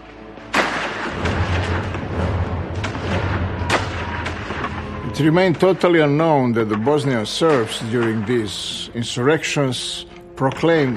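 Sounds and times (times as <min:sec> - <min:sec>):
gunfire echoing in the mountains of Herzegovina: 0:00.4 - 0:09.0
speech: 0:05.2 - 0:10.9.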